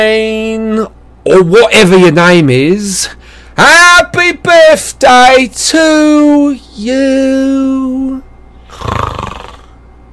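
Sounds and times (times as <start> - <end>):
speech: 0.0 - 8.2, 8.8 - 9.3
human voice imitating a snore: 8.7 - 9.8.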